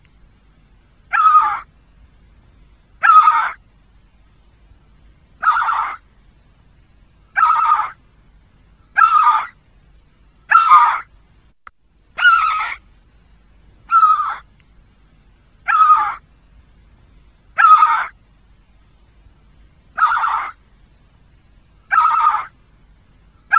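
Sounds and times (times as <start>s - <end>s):
Great Skua harsh calls: 1.1s - 1.7s, 3.0s - 3.6s, 5.4s - 6.1s, 7.3s - 8.0s, 8.9s - 9.6s, 10.5s - 11.1s, 12.2s - 12.8s, 13.9s - 14.5s, 15.6s - 16.3s, 17.6s - 18.2s, 19.9s - 20.6s, 21.8s - 22.6s.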